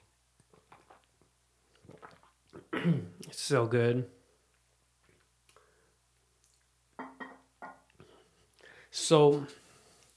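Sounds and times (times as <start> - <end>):
sipping of hot jasmine green tea: 1.8 - 2.6
swallow: 1.8 - 2.8
speech: 2.8 - 4.2, 9.1 - 9.6.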